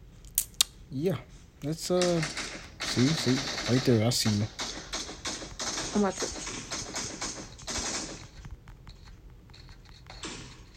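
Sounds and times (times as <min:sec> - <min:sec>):
speech: 0:00.9 - 0:04.6, 0:06.0 - 0:06.4
video game gunfire bursts: 0:02.0 - 0:08.4.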